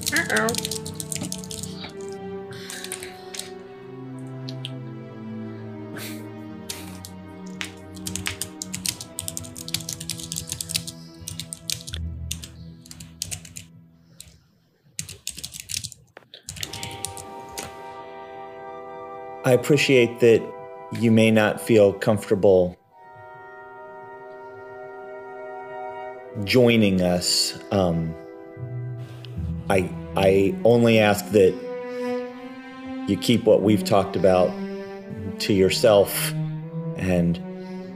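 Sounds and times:
typing on a computer keyboard: 0:00.0 - 0:01.8, 0:02.6 - 0:03.5, 0:07.9 - 0:14.3, 0:15.0 - 0:17.2
sustained humming musical background: 0:00.0 - 0:14.4, 0:16.6 - 0:37.9
speech: 0:00.1 - 0:00.8, 0:19.5 - 0:22.8, 0:26.5 - 0:28.2, 0:29.7 - 0:31.6, 0:33.1 - 0:34.6, 0:35.4 - 0:36.4, 0:37.0 - 0:37.5.

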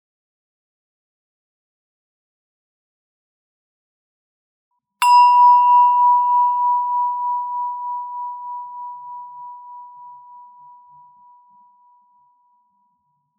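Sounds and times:
meditation bell struck during a guided breathing meditation: 0:05.0 - 0:12.2.

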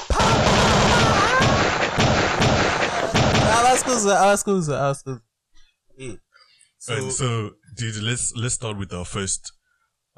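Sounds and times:
constant roaring battle-like din: 0:00.0 - 0:01.9, 0:02.5 - 0:04.4
dense rapid gunfire sound effects: 0:00.0 - 0:04.3
speech: 0:03.9 - 0:05.3, 0:06.0 - 0:06.2, 0:06.8 - 0:09.6.

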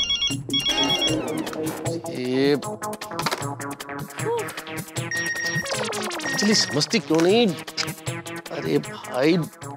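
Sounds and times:
melodic electronic phone ringtone: 0:00.0 - 0:01.7, 0:05.1 - 0:06.9
speech: 0:00.3 - 0:09.7.

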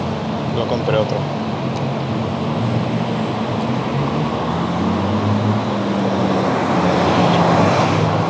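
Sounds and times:
heavy street traffic roar in Sants, Barcelona: 0:00.0 - 0:08.2
low hums of passing vehicle engines: 0:00.0 - 0:08.2
speech: 0:00.6 - 0:01.5.

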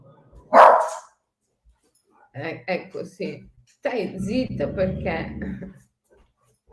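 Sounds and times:
dog barking early in the morning: 0:00.5 - 0:01.1
speech: 0:02.4 - 0:05.9.

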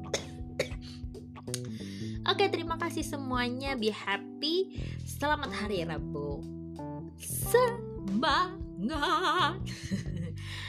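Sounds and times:
person coughing: 0:00.0 - 0:01.0
speech: 0:01.5 - 0:10.1
laughter: 0:09.8 - 0:10.4.

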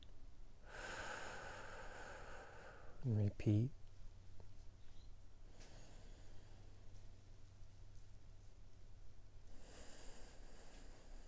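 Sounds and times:
deep breathing during a guided relaxation exercise: 0:00.6 - 0:03.0, 0:05.4 - 0:07.3, 0:09.4 - 0:11.2
speech: 0:03.0 - 0:03.8.

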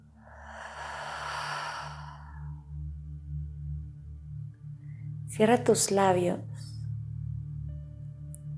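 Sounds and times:
low steady musical drone: 0:00.0 - 0:08.5
long breath out through the mouth during a guided breathing exercise: 0:00.2 - 0:02.6
speech: 0:05.4 - 0:06.7.

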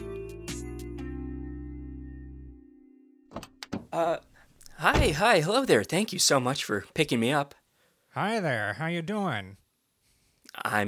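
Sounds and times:
speech: 0:03.4 - 0:07.6, 0:08.2 - 0:09.6, 0:10.6 - 0:10.8
four-door car door being shut: 0:04.9 - 0:05.2.

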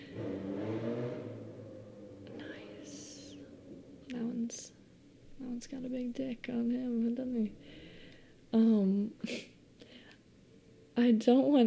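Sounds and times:
motorcycle engine passing by: 0:00.0 - 0:05.0
speech: 0:05.6 - 0:07.8, 0:08.5 - 0:09.5, 0:11.0 - 0:11.6.

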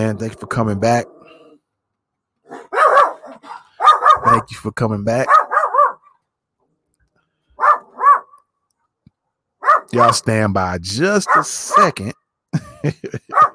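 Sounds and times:
speech: 0:00.0 - 0:01.2, 0:04.2 - 0:05.4, 0:09.9 - 0:13.4
dog barking outside: 0:02.5 - 0:04.5, 0:05.2 - 0:06.2, 0:07.6 - 0:08.4, 0:09.6 - 0:10.3, 0:11.2 - 0:12.0, 0:13.3 - 0:13.5
laughter: 0:12.5 - 0:13.5.

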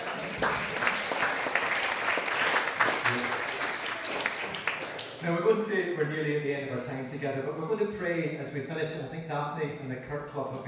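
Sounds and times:
audience applause in a room: 0:00.0 - 0:05.2
speech: 0:00.4 - 0:00.8, 0:05.2 - 0:10.6.

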